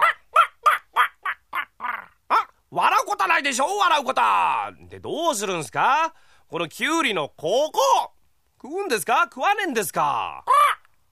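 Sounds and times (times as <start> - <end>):
human voice imitating a crow cawing: 0.0 - 2.6, 10.3 - 10.9
speech: 2.7 - 10.5.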